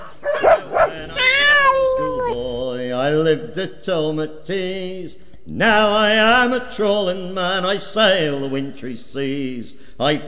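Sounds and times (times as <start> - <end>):
dogs barking: 0.0 - 2.4
speech: 3.1 - 10.2.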